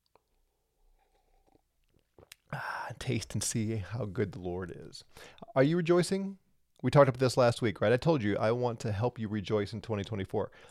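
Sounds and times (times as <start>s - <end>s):
person sipping a drink: 0.2s - 2.6s
speech: 2.5s - 10.6s.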